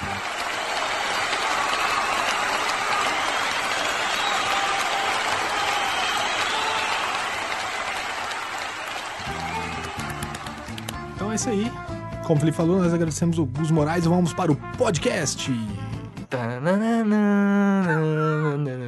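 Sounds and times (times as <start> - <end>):
loud dense crowd applause: 0.0 - 11.0
speech: 11.4 - 18.7.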